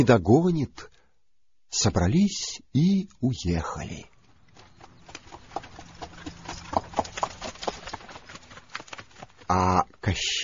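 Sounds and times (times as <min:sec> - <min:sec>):
speech: 0:00.0 - 0:00.9, 0:01.7 - 0:04.1, 0:09.5 - 0:10.4
horse hooves clip-clopping: 0:04.1 - 0:10.2.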